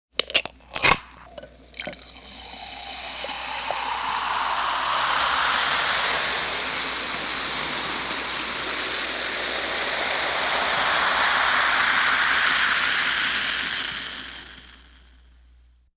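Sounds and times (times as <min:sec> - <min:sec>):
drink can opening: 0:00.2 - 0:02.1
drink pouring: 0:00.2 - 0:15.4.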